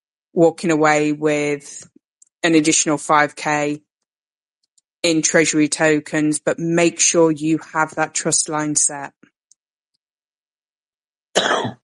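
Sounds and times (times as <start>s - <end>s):
speech: 0.4s - 3.9s, 5.0s - 9.3s, 11.4s - 11.8s
man with a cold coughing: 11.4s - 11.8s.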